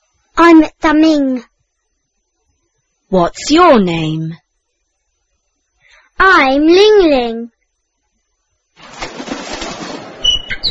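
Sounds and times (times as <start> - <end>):
speech: 0.5 - 1.5, 3.1 - 4.4, 6.2 - 7.6
bird wings flapping: 8.8 - 10.6
bird chirping: 10.2 - 10.6.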